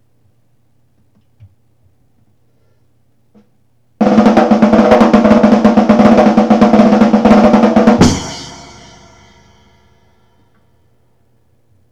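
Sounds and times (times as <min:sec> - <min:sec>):
acoustic snare drum roll: 0:04.0 - 0:09.8.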